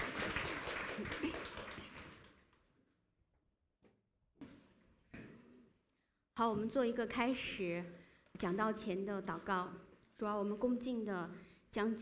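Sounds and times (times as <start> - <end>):
roomful of people applauding in welcome: 0.0 - 2.6
speech: 6.4 - 12.0.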